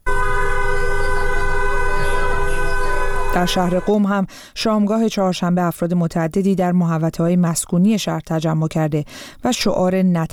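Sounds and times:
passing car horns blaring: 0.0s - 4.0s
speech: 3.4s - 10.3s.

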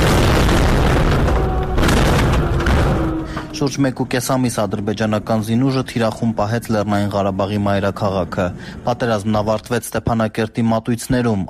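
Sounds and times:
explosions during wartime shelling: 0.0s - 3.8s
speech: 3.6s - 11.4s.

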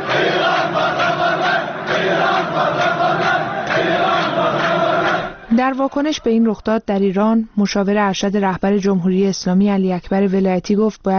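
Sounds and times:
protesters chanting slogans against Iran: 0.0s - 6.5s
speech: 5.6s - 11.1s.

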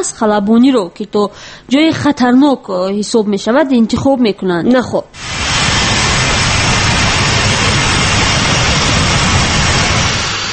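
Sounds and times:
speech: 0.0s - 5.2s
Boeing airliner jet engines in flight from Dushanbe toward Russia: 5.2s - 10.5s.

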